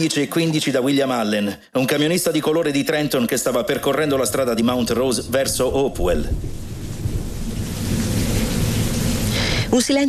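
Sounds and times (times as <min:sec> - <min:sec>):
speech: 0:00.0 - 0:06.6, 0:09.7 - 0:10.0
deep rolling rumble of thunder: 0:03.4 - 0:10.0
steady rain falling outside: 0:04.2 - 0:10.0.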